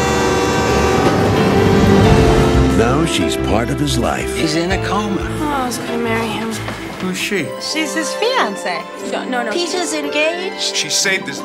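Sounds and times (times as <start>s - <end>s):
sustained tonal hum: 0.0s - 4.4s
train approaching on the tracks: 0.0s - 7.1s
speech: 3.1s - 11.4s.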